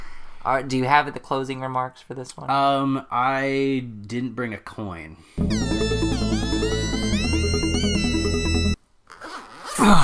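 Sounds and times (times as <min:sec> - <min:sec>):
speech: 0:00.4 - 0:06.3
warbling tonal electronic passage: 0:05.4 - 0:08.8
raspy zipper being pulled up: 0:09.1 - 0:10.0.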